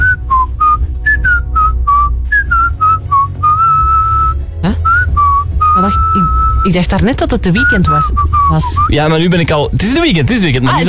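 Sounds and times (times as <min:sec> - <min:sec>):
person whistling a catchy pop tune: 0:00.0 - 0:06.7, 0:07.5 - 0:09.0
speech: 0:06.7 - 0:10.8.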